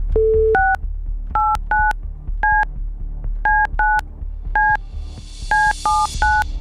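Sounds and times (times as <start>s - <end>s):
DTMF touch-tone beeps of a phone number being dialed: 0.2s - 0.8s, 1.4s - 2.7s, 3.5s - 4.0s, 4.6s - 4.8s, 5.5s - 6.5s.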